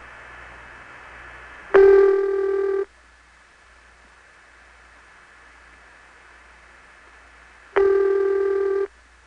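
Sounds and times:
1974 long-distance telephone call ringing: 1.8 - 2.9, 7.8 - 8.9.

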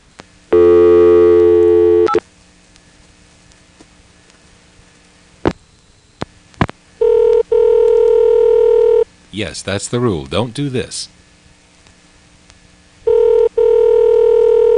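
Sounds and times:
telephone ringback tone with steady buzzing ring: 0.5 - 2.2, 7.0 - 9.0, 13.1 - 14.7
speech: 9.4 - 11.2.

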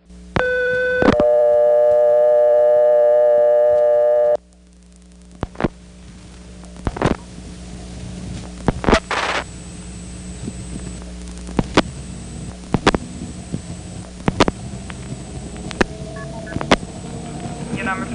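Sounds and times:
telephone ANI multi-frequency key pulse tones: 0.4 - 4.4
clicks and pops on telephone line: 4.4 - 7.3, 8.4 - 9.5, 10.4 - 16.9.

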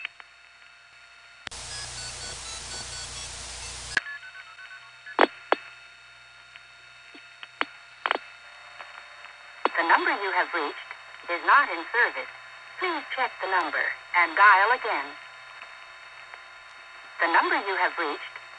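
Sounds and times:
steady telephone line tone: 1.5 - 4.0
speech: 9.8 - 15.2, 17.2 - 18.3.

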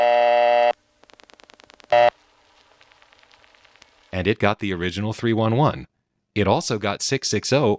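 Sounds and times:
buzzy old-fashioned telephone dial tone: 0.0 - 2.2
speech: 4.2 - 7.7.

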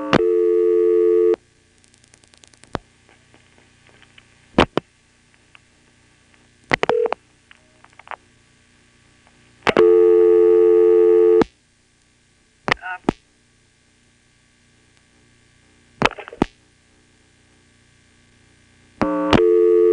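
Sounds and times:
buzzing telephone line tone on a long-distance trunk line: 0.0 - 1.4, 6.8 - 7.8, 9.6 - 11.5, 19.0 - 19.9.

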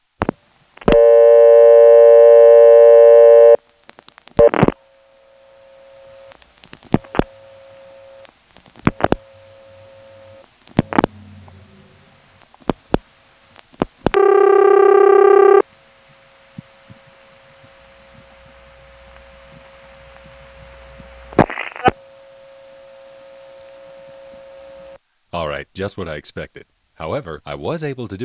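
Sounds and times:
steady low telephone line tone: 0.8 - 3.6, 4.4 - 6.3, 7.1 - 8.3, 9.1 - 11.1, 14.1 - 15.6, 21.8 - 25.0
buzzy tone bursts of a local call ringing through a callback circuit: 0.9 - 3.6, 4.4 - 6.3, 7.0 - 8.3, 9.0 - 11.1, 17.8 - 25.0
speech: 25.8 - 28.2.

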